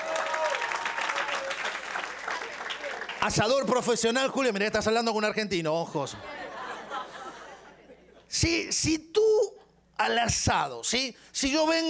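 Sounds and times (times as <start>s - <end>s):
studio audience applause: 0.0s - 3.4s
speech: 3.2s - 6.4s, 8.4s - 9.2s, 10.0s - 11.8s
laughter: 6.0s - 8.3s.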